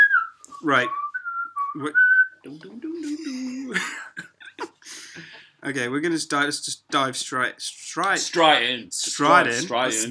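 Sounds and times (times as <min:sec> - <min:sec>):
person whistling a theme tune: 0:00.0 - 0:02.4
speech: 0:00.6 - 0:01.0, 0:01.8 - 0:04.3, 0:04.9 - 0:10.1.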